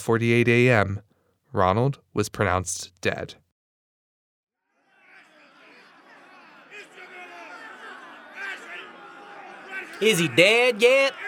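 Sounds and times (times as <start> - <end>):
speech: 0.0 - 3.4, 10.0 - 11.2
people shouting in a crowd: 4.6 - 11.2
large crowd chattering outdoors outside a prison: 4.8 - 11.2
people laughing in a crowd: 4.8 - 11.2.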